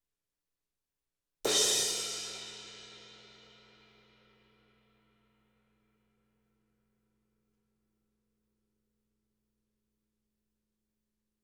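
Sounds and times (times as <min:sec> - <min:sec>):
cymbal crashes: 0:01.5 - 0:02.9.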